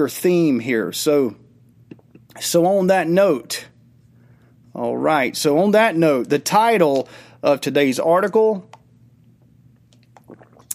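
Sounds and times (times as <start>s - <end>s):
speech: 0.0s - 1.4s, 2.4s - 3.7s, 4.8s - 8.8s
low steady hum: 0.0s - 10.7s
person sipping water: 9.4s - 10.7s
slurp or swallow: 10.0s - 10.7s.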